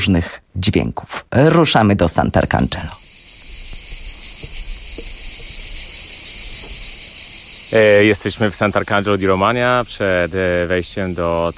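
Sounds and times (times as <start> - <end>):
speech: 0.0 - 3.0, 7.7 - 11.5
cicadas buzzing outdoors at a summer festival in Sant'Arcangelo di Romagna: 2.2 - 11.5
birds calling: 2.7 - 11.5.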